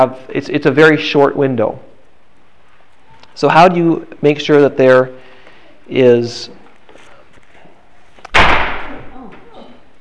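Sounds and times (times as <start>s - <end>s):
speech: 0.0s - 1.9s, 3.4s - 5.2s, 5.9s - 6.6s
door slamming shut: 8.3s - 9.2s.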